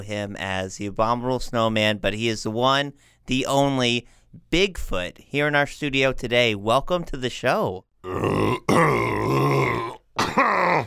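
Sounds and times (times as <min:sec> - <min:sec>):
speech: 0:00.0 - 0:09.2
loud guttural throat clearing: 0:08.2 - 0:10.8.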